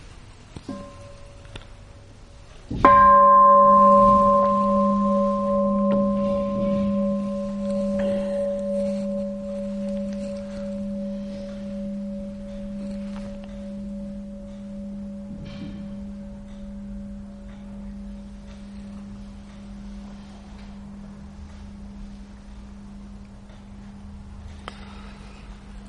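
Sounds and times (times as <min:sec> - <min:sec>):
single bell strike ringing: 0:02.8 - 0:17.7.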